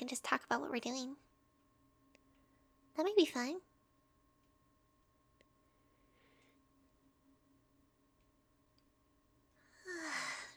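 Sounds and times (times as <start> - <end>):
speech: 0.1 - 1.3, 3.0 - 3.7
person yawning: 9.8 - 10.5.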